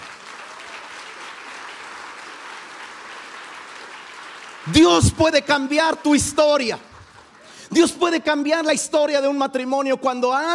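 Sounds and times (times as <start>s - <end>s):
audience applauding: 0.0s - 7.7s
speech: 4.6s - 6.9s, 7.8s - 10.5s.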